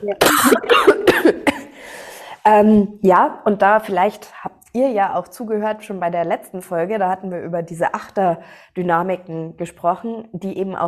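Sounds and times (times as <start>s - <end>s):
speech: 0.0s - 1.4s, 2.4s - 10.8s
person coughing in harsh bursts: 0.0s - 1.9s.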